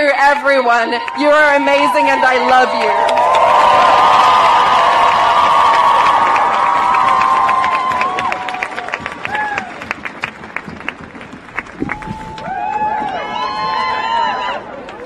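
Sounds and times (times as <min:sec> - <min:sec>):
large rally crowd of thousands cheering: 0:00.2 - 0:15.0
speech: 0:00.3 - 0:04.5.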